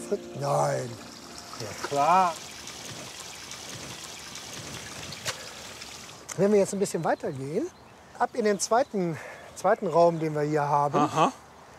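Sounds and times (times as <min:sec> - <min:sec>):
water trickling from a garden water feature: 0:00.0 - 0:06.5
speech: 0:00.1 - 0:03.0, 0:06.4 - 0:11.4
water splash: 0:01.0 - 0:06.3.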